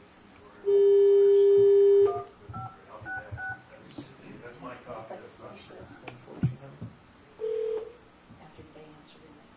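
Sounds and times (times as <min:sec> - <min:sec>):
people talking: 0:00.4 - 0:06.9, 0:08.3 - 0:09.5
steady phone tone: 0:00.7 - 0:03.6, 0:07.4 - 0:07.9
touch-tone beeps dialing an office phone number: 0:00.7 - 0:03.6.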